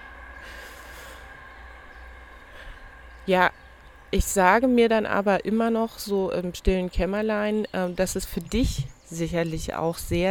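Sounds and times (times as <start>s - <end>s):
train rumbling past: 0.0s - 7.1s
speech: 3.2s - 10.2s.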